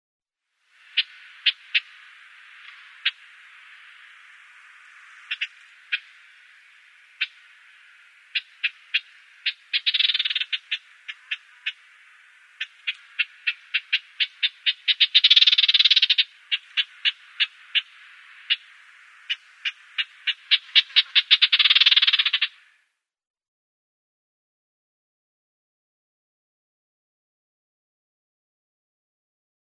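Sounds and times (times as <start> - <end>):
Arabian Warbler calling: 0.8 - 22.7.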